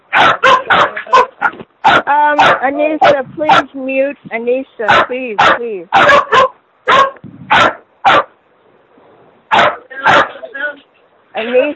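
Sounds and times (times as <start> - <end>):
dog barking: 0.1 - 3.7, 4.9 - 8.4, 9.5 - 10.5
speech: 2.6 - 6.5.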